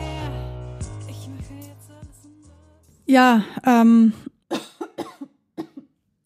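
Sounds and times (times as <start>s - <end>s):
speech: 3.1s - 4.7s
person coughing: 4.3s - 5.9s.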